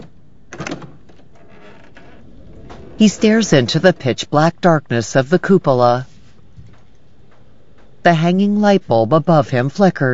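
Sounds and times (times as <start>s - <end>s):
door to a dark cupola rattling and scraping as it is pushed open: 0.0s - 4.2s
speech: 3.0s - 6.1s, 8.0s - 10.1s.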